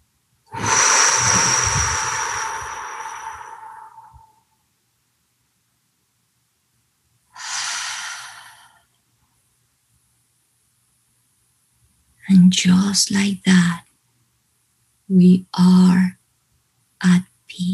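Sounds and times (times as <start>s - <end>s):
deep slow breath drawn in during meditation: 0.5s - 4.5s, 7.4s - 8.8s
speech: 12.3s - 13.8s, 15.1s - 16.2s.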